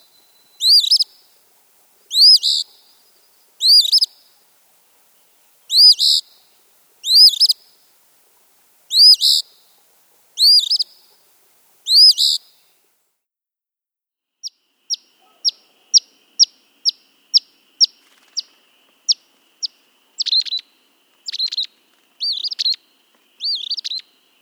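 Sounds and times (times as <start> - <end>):
Eastern phoebe raspy two-note phrases: 0.0 - 4.7, 5.7 - 8.0, 8.9 - 9.8, 10.4 - 11.2, 11.8 - 12.6, 14.9 - 18.5, 19.1 - 22.8, 23.4 - 24.2.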